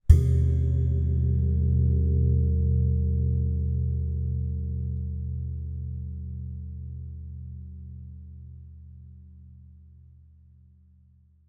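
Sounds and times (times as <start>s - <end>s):
percussion: 0.0s - 5.3s.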